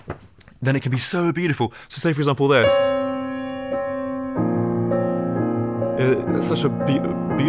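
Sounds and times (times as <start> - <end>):
speech: 0.6 - 3.2, 6.0 - 7.4
sustained chords containing a dissonant minor ninth: 2.6 - 7.4.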